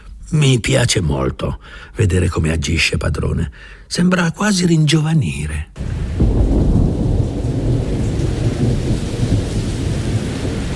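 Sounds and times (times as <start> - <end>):
speech: 0.3 - 6.5
steady heavy rain pouring: 5.8 - 10.7.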